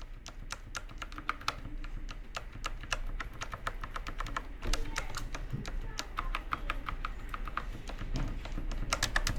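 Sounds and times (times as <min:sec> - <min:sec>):
fast typing on a mechanical keyboard with non-clicky switches: 0:00.0 - 0:09.3.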